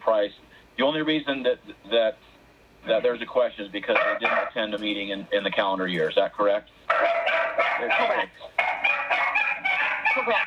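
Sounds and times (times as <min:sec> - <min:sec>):
speech: 0:00.1 - 0:08.7, 0:10.2 - 0:10.4
dog barking in a room during an online meeting: 0:03.9 - 0:04.6, 0:06.9 - 0:10.4.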